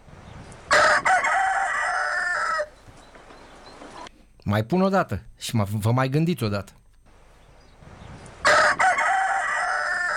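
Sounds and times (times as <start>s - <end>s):
rooster crowing: 0.7s - 2.8s, 8.4s - 10.1s
speech: 4.5s - 6.8s.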